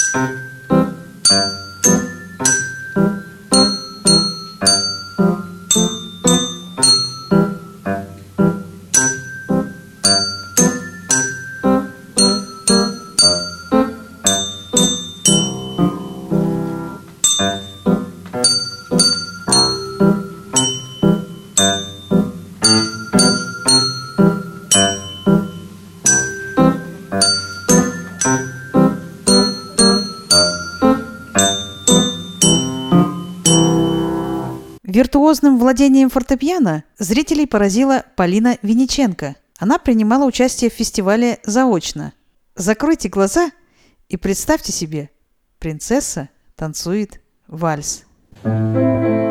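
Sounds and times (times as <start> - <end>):
melody played on desk handbells: 0.0 - 34.8
speech: 0.1 - 1.5, 35.6 - 49.2.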